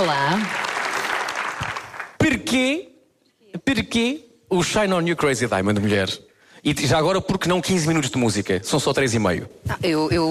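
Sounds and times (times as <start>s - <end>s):
speech: 0.0s - 0.6s, 2.3s - 2.9s, 3.5s - 10.3s
crowd clapping: 0.0s - 2.2s.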